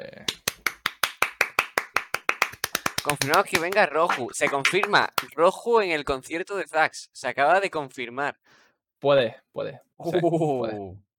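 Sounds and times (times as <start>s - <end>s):
hand clapping: 0.2s - 5.4s
speech: 3.0s - 11.0s.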